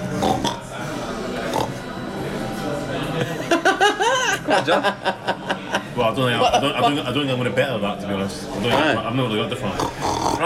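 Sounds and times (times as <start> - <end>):
people imitating pig oinks and snorts: 0.1 - 0.7, 1.4 - 1.9, 9.7 - 10.4
laughter: 2.9 - 7.1
speech: 4.6 - 5.3, 6.0 - 10.4.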